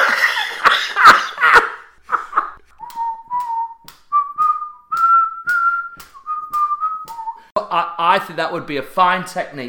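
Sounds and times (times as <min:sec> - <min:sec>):
coughing bursts: 0:00.0 - 0:02.4
breathy laughter: 0:00.0 - 0:02.6
whistled rock song melody: 0:02.7 - 0:07.5
speech: 0:08.2 - 0:09.6.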